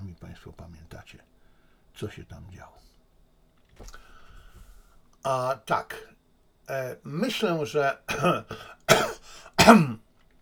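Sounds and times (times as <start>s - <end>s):
speech: 0.4s - 1.4s, 2.0s - 2.9s, 3.8s - 4.0s, 5.2s - 10.0s
man coughing: 8.1s - 10.0s.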